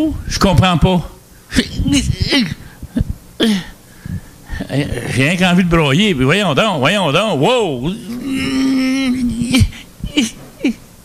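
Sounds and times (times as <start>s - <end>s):
speech: 0.0s - 2.6s, 3.4s - 3.7s, 4.6s - 8.7s
person sobbing with joy: 1.5s - 5.2s, 7.8s - 10.9s.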